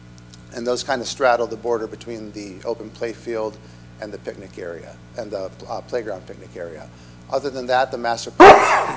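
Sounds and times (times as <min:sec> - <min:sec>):
speech: 0:00.5 - 0:08.9
loud sneeze: 0:08.4 - 0:08.9.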